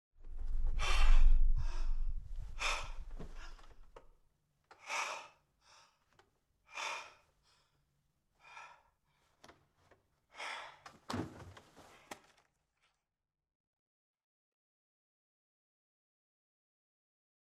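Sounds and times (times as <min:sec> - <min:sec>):
rapid breathing: 0:00.4 - 0:04.1, 0:04.7 - 0:07.8, 0:08.4 - 0:09.4, 0:10.3 - 0:11.1.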